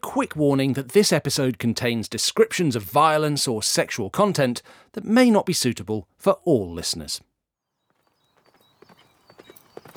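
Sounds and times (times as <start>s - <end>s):
speech: 0.2s - 7.3s
horse carrying a knight galloping, hooves clip-clopping: 8.3s - 9.9s.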